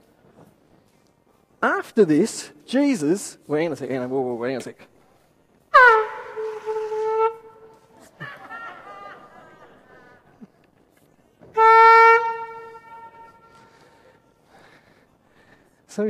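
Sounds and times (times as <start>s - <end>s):
speech: 1.6s - 4.9s
loud air horn blasts: 5.7s - 7.8s, 11.5s - 14.0s
laughter: 8.0s - 10.8s.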